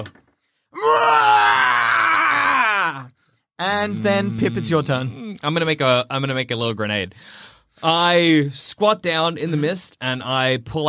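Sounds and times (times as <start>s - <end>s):
speech: 0.0s - 0.2s, 3.6s - 10.8s
voice imitating a creature's scream: 0.8s - 3.1s.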